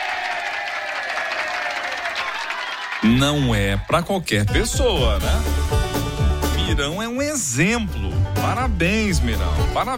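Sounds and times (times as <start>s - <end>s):
crowd applauding: 0.0s - 4.2s
speech: 3.0s - 5.7s, 6.7s - 9.9s.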